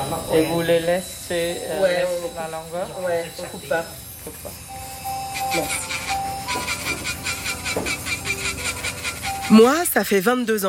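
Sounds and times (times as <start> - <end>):
speech: 0.1 - 4.8, 5.5 - 6.7, 9.5 - 10.6
nail file rasping across fingernails in a nail salon: 5.2 - 10.3.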